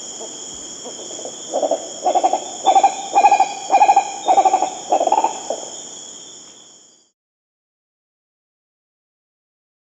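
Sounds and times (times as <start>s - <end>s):
high insect drone in Venezuela: 0.0s - 7.2s
green ibis hooting calls in Venezuela: 0.9s - 5.7s.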